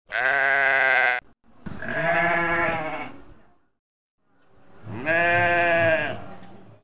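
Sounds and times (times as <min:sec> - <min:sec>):
sheep bleating: 0:00.1 - 0:03.2, 0:04.9 - 0:06.2.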